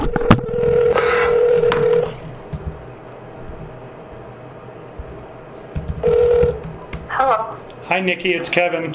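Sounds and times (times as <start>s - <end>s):
steady telephone tone: 0.1s - 2.1s, 6.0s - 6.6s
speech: 8.0s - 8.9s.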